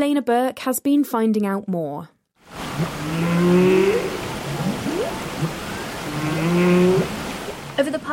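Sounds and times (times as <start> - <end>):
speech: 0.0 - 2.2, 2.8 - 4.8, 6.4 - 7.1, 7.8 - 8.1
humpback whale calls with low moaning tones and rising whoops: 2.5 - 7.8
steady hiss of underwater noise: 2.5 - 7.8.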